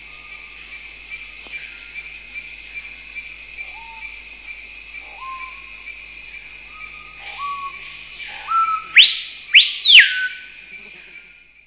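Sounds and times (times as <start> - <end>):
screaming piha calling: 5.0 - 5.9, 6.6 - 11.5.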